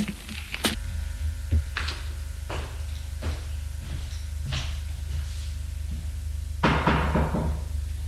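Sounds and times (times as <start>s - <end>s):
steady low hum: 0.0s - 8.0s
knocking on a bedroom door: 6.6s - 7.7s.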